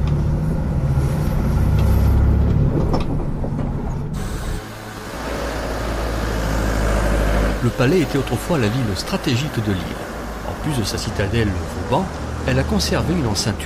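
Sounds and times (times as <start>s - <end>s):
bus engine drone heard from inside on an island: 0.0s - 13.6s
bus rattling and creaking: 0.0s - 13.6s
speech: 7.8s - 13.6s.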